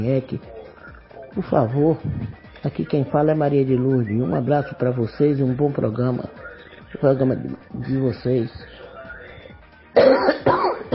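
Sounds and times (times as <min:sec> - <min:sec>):
speech: 0:00.0 - 0:08.8, 0:10.0 - 0:10.7
woman coughing harshly: 0:10.0 - 0:10.9.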